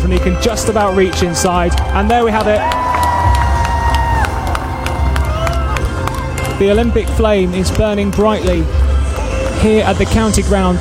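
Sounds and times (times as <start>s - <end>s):
people clapping: 0.0s - 10.7s
speech: 0.1s - 3.0s, 6.6s - 8.8s, 9.6s - 10.7s
large outdoor crowd cheering: 0.2s - 7.0s
people shouting: 2.4s - 6.0s.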